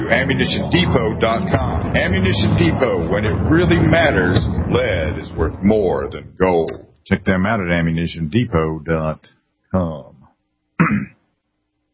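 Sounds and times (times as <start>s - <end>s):
speech: 0.1s - 10.1s, 10.8s - 11.1s
throat clearing: 10.8s - 11.2s.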